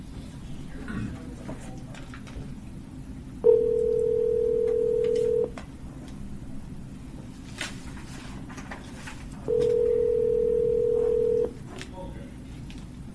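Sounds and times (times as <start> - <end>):
steady electronic telephone tone: 3.4 - 5.5, 9.5 - 11.5.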